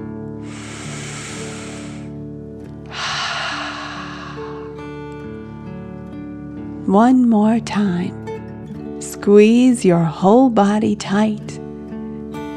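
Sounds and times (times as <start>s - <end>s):
gentle sustained music tones: 0.0s - 12.5s
slow deep breath in through the nose and out through the mouth: 0.4s - 5.6s
speech: 6.9s - 8.2s, 9.2s - 11.6s.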